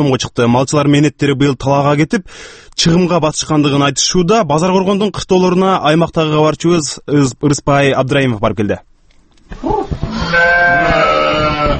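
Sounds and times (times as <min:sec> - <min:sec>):
speech: 0:00.0 - 0:08.9, 0:09.5 - 0:11.0
sheep and goats bleating in a livestock yard in a village of Bazar-Korgon district: 0:10.0 - 0:11.7.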